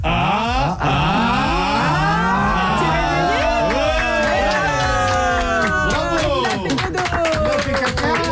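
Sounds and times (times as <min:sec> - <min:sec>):
studio audience shouting: 0:00.2 - 0:07.6
studio audience doing a wave cheering and whooping: 0:00.8 - 0:07.7
studio audience clapping: 0:01.9 - 0:08.2.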